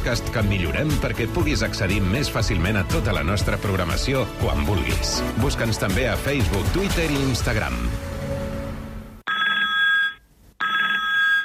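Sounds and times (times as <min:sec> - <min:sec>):
speech: 0:00.0 - 0:08.1
telephone ringing with a bright trilling electronic tone: 0:09.3 - 0:11.4.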